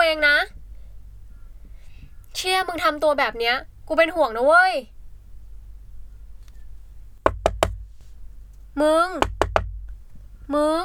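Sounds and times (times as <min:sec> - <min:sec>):
speech: 0:02.4 - 0:04.9, 0:08.8 - 0:09.4, 0:10.5 - 0:10.8
firm knocking on a room door at a women's dormitory: 0:07.3 - 0:08.0, 0:09.2 - 0:10.0.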